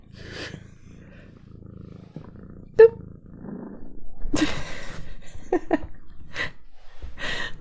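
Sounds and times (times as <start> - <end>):
cat purring while rubbing against the microphone: 0.0 - 7.5
people talking: 2.8 - 3.0.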